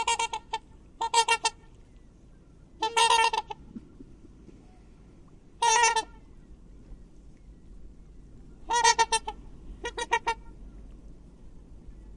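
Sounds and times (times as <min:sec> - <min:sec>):
Black swan Cygnus atratus giving harsh harmonic honking calls: 0:00.0 - 0:01.8, 0:02.8 - 0:03.7, 0:05.6 - 0:06.3, 0:08.6 - 0:10.8.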